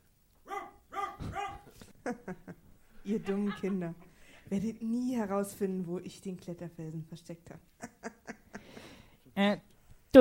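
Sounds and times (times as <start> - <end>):
dog short yelping barks: 0.4 - 1.7
laughter: 1.2 - 4.2
speech: 3.1 - 7.8, 9.4 - 10.1.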